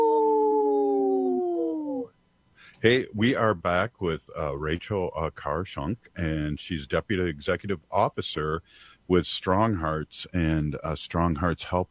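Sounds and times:
wolf howling: 0:00.0 - 0:02.1
speech: 0:02.8 - 0:11.8.

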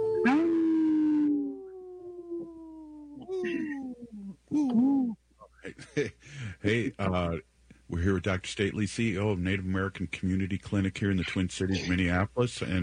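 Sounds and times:
wolves yipping: 0:00.0 - 0:01.6
wolves howling in a chorus: 0:00.0 - 0:04.4
speech: 0:05.8 - 0:12.8.

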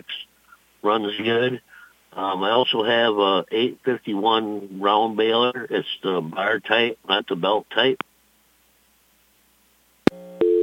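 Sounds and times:
speech: 0:00.8 - 0:08.1
telephone busy signal from a phone line fault: 0:10.1 - 0:10.6.

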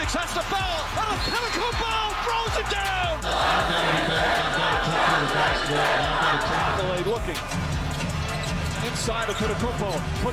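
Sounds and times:
arena crowd shouting: 0:00.0 - 0:07.1
packed arena crowd roaring and cheering: 0:00.0 - 0:10.3
speech: 0:08.9 - 0:10.3.

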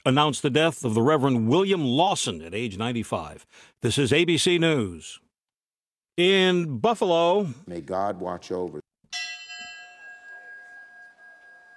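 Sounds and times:
speech: 0:00.0 - 0:05.2, 0:06.2 - 0:08.8
bell ringing at a memorial in Buffalo: 0:09.1 - 0:11.7.

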